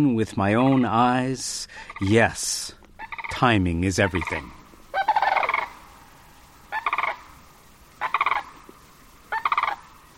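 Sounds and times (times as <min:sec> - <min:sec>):
speech: 0:00.0 - 0:04.6
returning sandhill cranes and snow geese calling in flight: 0:03.0 - 0:10.1.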